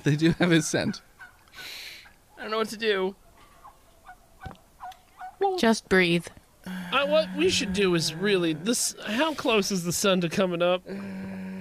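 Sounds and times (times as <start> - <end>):
speech: 0.0 - 1.8, 2.4 - 3.2, 5.4 - 11.5
turkey gobbling: 0.5 - 2.2, 3.2 - 5.4.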